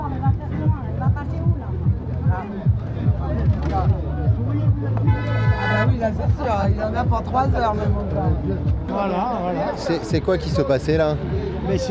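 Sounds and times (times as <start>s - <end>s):
crowd chatter: 0.0s - 11.8s
street noise: 0.0s - 11.8s
truck horns honking at a roadblock: 5.0s - 6.2s
speech: 6.1s - 11.8s.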